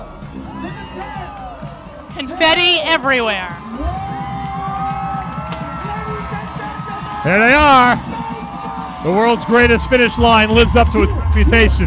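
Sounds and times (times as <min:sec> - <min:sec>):
crowd cheering and whooping as riders arrive: 0:00.0 - 0:11.8
speech: 0:02.2 - 0:03.9, 0:07.2 - 0:08.2, 0:09.0 - 0:11.8
man speaking excitedly: 0:06.0 - 0:08.0, 0:09.0 - 0:11.8.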